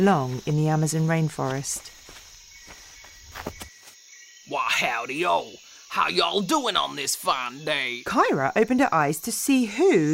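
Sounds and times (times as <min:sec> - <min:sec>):
speech: 0:00.0 - 0:02.0, 0:04.7 - 0:10.1
buzzing insects and crickets in jungle: 0:00.0 - 0:10.1
stumbling footsteps crunching through jungle undergrowth: 0:01.3 - 0:04.0.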